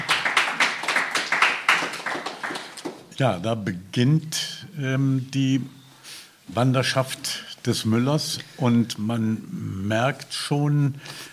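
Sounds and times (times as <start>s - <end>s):
small audience applauding after a reading: 0.0s - 3.1s
speech: 3.2s - 5.8s, 6.5s - 11.2s.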